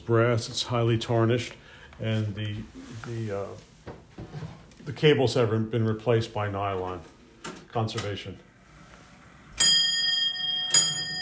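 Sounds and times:
speech: 0.1 - 3.7, 4.3 - 7.1, 7.7 - 8.5
clock bell striking with a bright ringing tone: 9.6 - 11.1.

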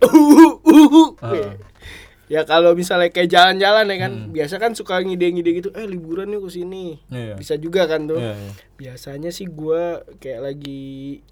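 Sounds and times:
voiced hacking coughs: 0.0 - 1.8
rough low throat-clearing rasp: 0.0 - 2.0, 4.0 - 4.4, 8.2 - 8.6
speech: 2.3 - 11.2.

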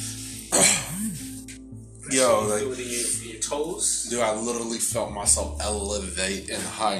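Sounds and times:
harsh cough trailing into a raspy throat sound: 0.6 - 1.2
speech: 2.1 - 6.9.

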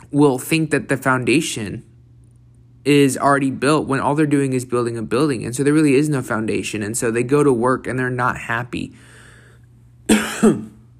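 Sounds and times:
quiet hum: 0.0 - 10.9
speech: 0.1 - 1.9, 2.8 - 9.1, 10.4 - 10.7
loud double cough: 10.1 - 10.8.

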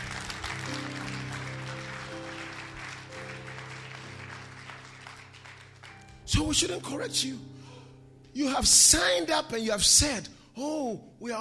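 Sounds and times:
crowd applause: 0.0 - 6.2
sustained organ-like chords: 0.0 - 8.3
speech: 6.3 - 7.6, 8.4 - 11.4.

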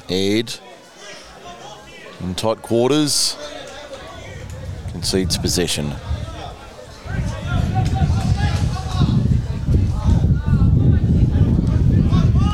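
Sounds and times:
faint crowd hubbub: 0.0 - 12.5
speech: 0.1 - 0.7, 2.2 - 3.6, 4.9 - 6.1
wind howling and buffeting: 3.8 - 12.5.

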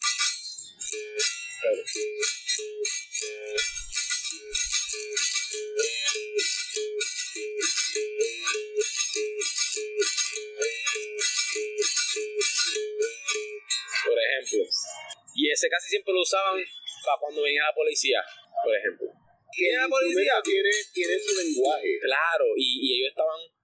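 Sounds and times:
shaken rattle: 0.0 - 13.7, 20.1 - 21.7
capoeira cavalry rhythm on a twanging berimbau: 0.0 - 14.9, 19.6 - 22.4
speech: 15.6 - 23.5.

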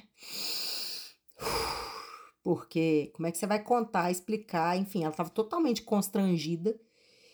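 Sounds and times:
deep breath with long inhale and fuller exhale: 0.0 - 2.4, 6.9 - 7.3
speech: 2.5 - 6.9.

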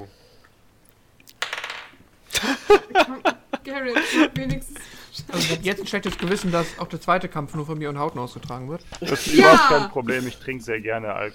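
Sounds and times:
dice rattling on a table: 1.4 - 2.0
laughter: 2.3 - 5.8, 9.0 - 10.4
speech: 2.7 - 3.2, 3.8 - 11.3.

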